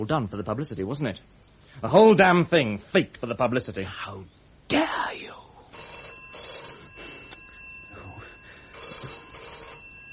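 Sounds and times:
speech: 0.0s - 5.4s
telephone ringing: 5.7s - 10.1s.

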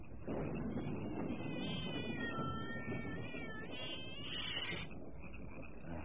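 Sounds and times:
steady rumbling noise: 0.0s - 6.0s
cat meowing: 1.3s - 4.9s.

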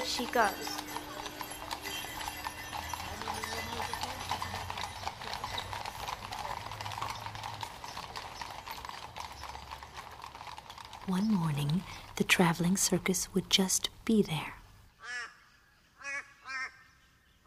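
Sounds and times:
horse hooves clip-clopping: 0.0s - 14.0s
speech: 0.2s - 0.9s, 11.1s - 14.6s.

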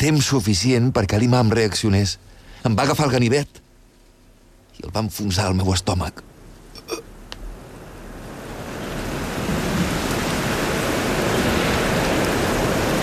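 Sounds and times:
speech: 0.0s - 3.6s, 4.8s - 6.3s
steady dense rain downpour: 4.8s - 13.0s.

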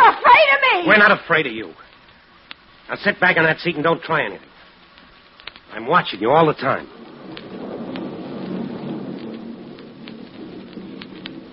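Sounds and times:
steady dense rain: 0.0s - 11.5s
speech: 0.9s - 1.9s, 2.9s - 4.5s, 5.7s - 7.5s
deep rolling rumble of thunder: 5.8s - 11.5s.

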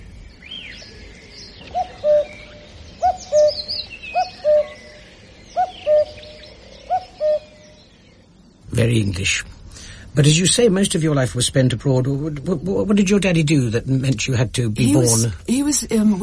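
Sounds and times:
birds twittering softly: 0.0s - 16.2s
common cuckoo calling: 0.4s - 8.1s
speech: 8.8s - 9.5s, 10.2s - 16.2s.

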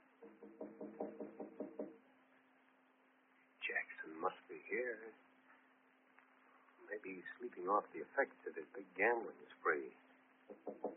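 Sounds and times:
man knocking on an office door: 0.2s - 2.0s, 10.5s - 10.9s
speech: 4.7s - 5.3s, 7.0s - 10.0s.

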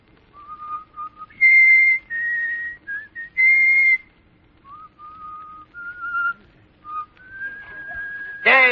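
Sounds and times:
man whistling a folk tune: 0.3s - 8.7s.

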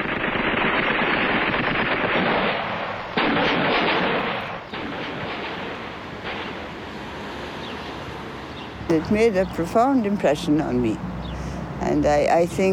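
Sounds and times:
artillery and gunfire aimed at blocks of flats during street fighting in Vienna: 0.0s - 6.8s
speech: 8.9s - 11.1s, 11.8s - 12.7s.

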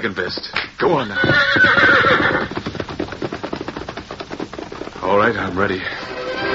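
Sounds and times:
speech: 0.0s - 2.3s, 5.1s - 6.0s
horse hoofbeats galloping: 0.0s - 6.4s
red horse whinnying: 1.0s - 2.9s.

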